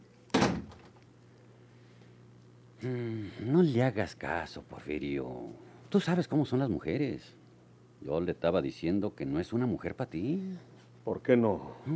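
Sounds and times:
quiet room hum: 0.0s - 11.9s
door shutting: 0.3s - 1.0s
speech: 2.8s - 7.4s, 8.0s - 11.9s.

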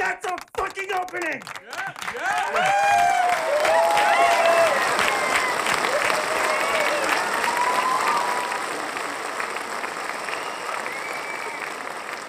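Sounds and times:
large crowd clapping: 0.0s - 12.2s
people cheering: 0.0s - 12.2s
speech: 0.9s - 2.9s.

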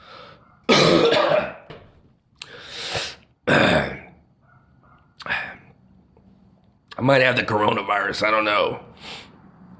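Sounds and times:
harsh throaty coughs: 0.7s - 1.7s, 3.4s - 4.2s
speech: 7.0s - 9.3s.

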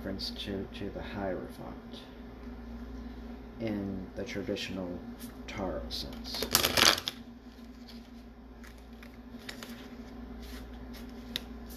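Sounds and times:
steady low hum: 0.0s - 11.7s
speech: 0.1s - 2.1s, 3.6s - 7.2s
tarot card deck shuffling: 6.1s - 11.7s
soft clicks of handling a deck of tarot cards: 7.6s - 11.7s.

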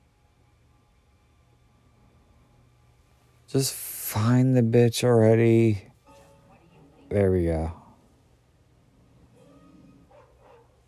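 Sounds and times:
speech: 3.5s - 5.9s, 7.1s - 7.8s
dog barking: 10.0s - 10.8s.

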